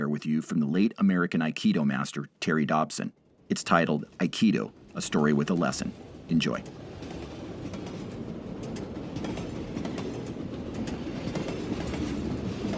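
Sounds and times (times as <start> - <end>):
speech: 0.2 - 6.8
train clanking and rattling on rails: 3.6 - 12.7.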